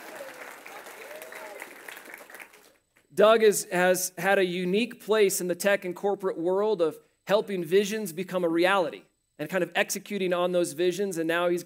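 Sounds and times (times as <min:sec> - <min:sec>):
audience applauding: 0:00.0 - 0:02.8
speech: 0:03.2 - 0:11.6.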